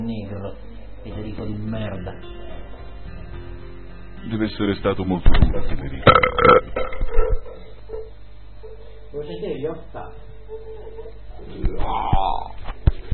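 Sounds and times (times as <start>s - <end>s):
speech: 0.0s - 2.6s, 4.2s - 8.0s, 9.1s - 12.5s
loud drawn-out guttural burps: 6.0s - 7.5s.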